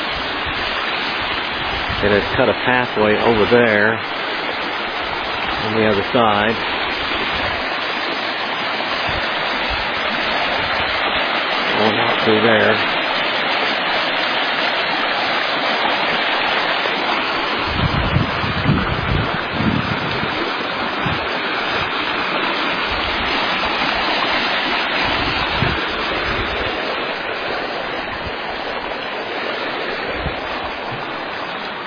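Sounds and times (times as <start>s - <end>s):
flowing stream water rushing: 0.0s - 31.8s
speech: 2.0s - 4.1s, 5.6s - 6.7s, 11.8s - 13.0s.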